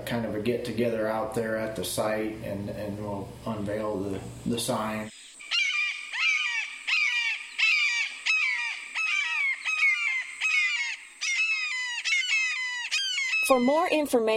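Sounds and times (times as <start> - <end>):
speech: 0.1 - 5.2, 13.5 - 14.3
bird calling in loud harsh cries: 4.2 - 14.3.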